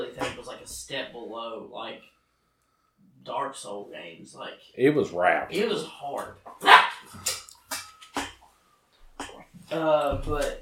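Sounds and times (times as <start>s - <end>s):
speech: 0.7s - 2.2s, 3.0s - 7.4s, 9.7s - 10.6s
dog barking: 6.6s - 7.1s.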